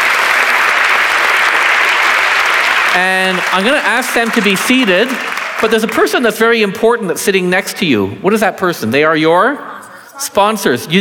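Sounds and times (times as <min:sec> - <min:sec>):
audience applause at a sacrament ceremony: 0:00.0 - 0:06.3
speech: 0:02.9 - 0:10.9.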